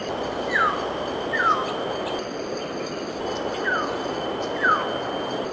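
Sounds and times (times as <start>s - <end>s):
adult Hill Myna calling, possibly with juvenile: 0.1s - 2.2s, 3.2s - 5.4s.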